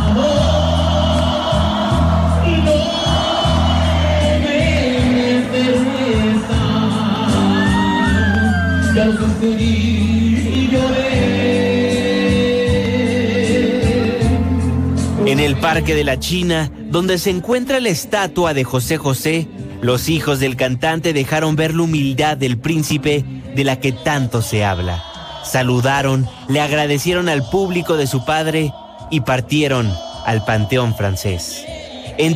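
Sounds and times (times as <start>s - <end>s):
crowd screaming and cheering with shrill whoops: 0.0s - 15.4s, 23.6s - 32.3s
amplified music pulsing: 0.0s - 32.3s
speech: 15.6s - 32.3s.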